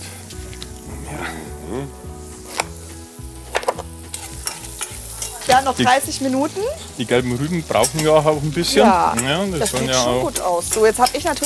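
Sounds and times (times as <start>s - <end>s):
chicken frying in a pan of half oil and half butter: 0.0s - 11.4s
speech: 1.1s - 2.1s, 5.6s - 11.4s.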